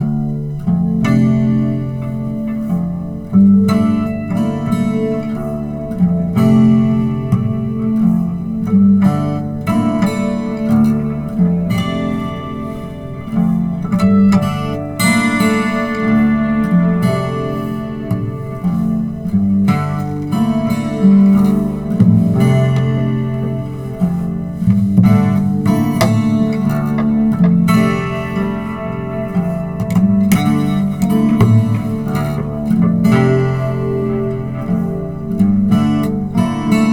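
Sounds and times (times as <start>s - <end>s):
acoustic riff in D minor: 0.0s - 36.9s.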